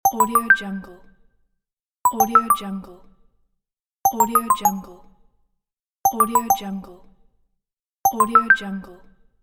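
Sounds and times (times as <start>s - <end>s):
simple notification sound: 0.1s - 0.6s, 2.1s - 2.6s, 4.1s - 4.9s, 6.1s - 6.8s, 8.1s - 8.6s.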